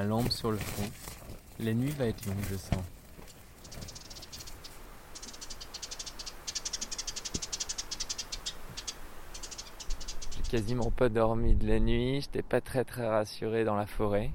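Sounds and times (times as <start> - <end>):
speech: 0.0 - 3.0, 10.5 - 14.3
tent fabric rattling and flapping in strong wind: 0.0 - 4.1.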